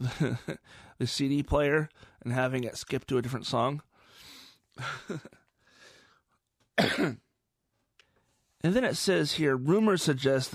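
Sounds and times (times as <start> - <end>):
speech: 0.0 - 3.9, 4.8 - 5.4, 6.8 - 7.2, 8.6 - 10.5
rough throat clearing: 6.8 - 7.3
harsh coughs: 6.8 - 7.4.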